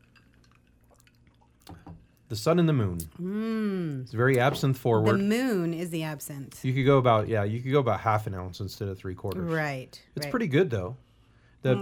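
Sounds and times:
lime squeezed into a cocktail in a glass, dripping and splashing: 0:00.0 - 0:02.3
steady low hum: 0:00.0 - 0:11.8
speech: 0:02.3 - 0:11.0, 0:11.6 - 0:11.8.

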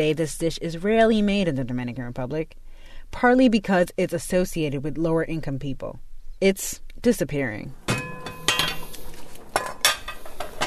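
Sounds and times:
speech: 0:00.0 - 0:07.8
soft hum of a kitchen: 0:07.6 - 0:10.6
metal utensils clinking and scraping against pots while cooking beans: 0:07.9 - 0:09.0, 0:09.6 - 0:10.6.

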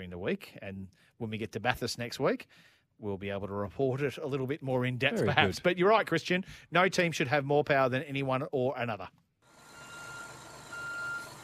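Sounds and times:
speech: 0:00.0 - 0:09.2
truck reversing alarm beeps: 0:09.7 - 0:11.4.

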